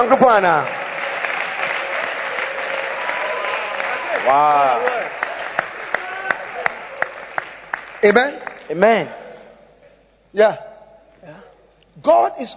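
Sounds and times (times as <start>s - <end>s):
speech: 0.0s - 0.8s, 4.2s - 5.2s, 8.0s - 9.2s, 10.3s - 11.4s, 12.0s - 12.5s
church congregation clapping hands in rhythmic beats: 0.0s - 9.0s.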